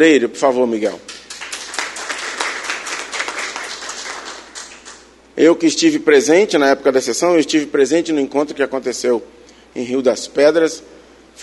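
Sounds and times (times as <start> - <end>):
speech: 0.0 - 1.2, 5.4 - 11.0
audience applauding: 1.1 - 5.0.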